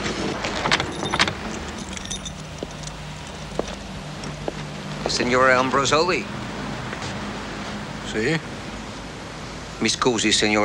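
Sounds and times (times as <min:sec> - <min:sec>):
Alfa Romeo Alfetta engine humming while parking in front of a house: 0:00.2 - 0:10.6
keys jangling: 0:00.5 - 0:04.4
speech: 0:05.2 - 0:06.4, 0:08.1 - 0:08.5, 0:09.8 - 0:10.6.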